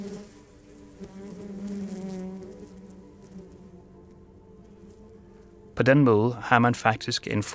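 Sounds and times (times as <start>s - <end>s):
bees buzzing: 0.0s - 6.0s
speech: 5.8s - 7.5s.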